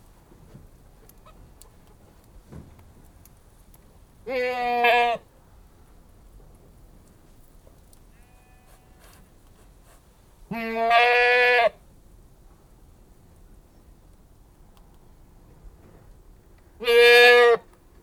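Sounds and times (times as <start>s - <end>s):
Anglo-Nubian goat bleating: 4.2s - 5.2s, 8.2s - 9.0s, 10.5s - 11.8s, 16.8s - 17.6s.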